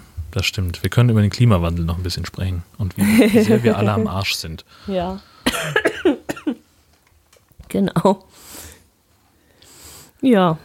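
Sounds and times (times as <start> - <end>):
speech: 0.3 - 6.1, 7.7 - 8.7, 10.2 - 10.6
laughter: 3.0 - 4.1
short harsh coughs: 5.5 - 6.6.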